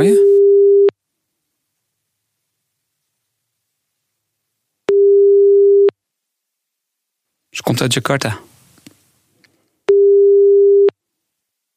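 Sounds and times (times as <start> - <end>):
speech: 0.0 - 0.2, 7.6 - 8.5
telephone ringback tone while placing a call: 0.2 - 0.9, 4.9 - 5.9, 9.9 - 10.9.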